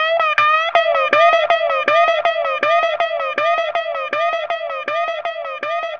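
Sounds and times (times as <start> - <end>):
guitar with delay effect: 0.0 - 5.9.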